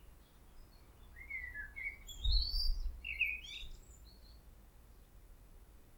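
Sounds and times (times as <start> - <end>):
Common blackbird Turdus merula singing: 0.6 - 4.4.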